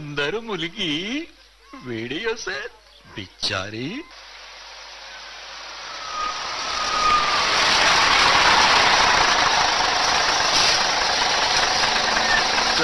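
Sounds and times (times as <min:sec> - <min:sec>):
speech: 0:00.2 - 0:04.3
bus engine idling as bus arrives: 0:04.2 - 0:12.8.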